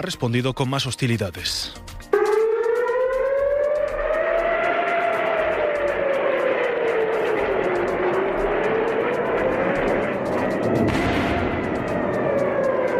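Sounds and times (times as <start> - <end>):
speech: 0.0 - 1.9
air raid sirens wailing: 2.1 - 12.9
dense roar: 3.1 - 12.9
sharp bangs: 6.6 - 12.9.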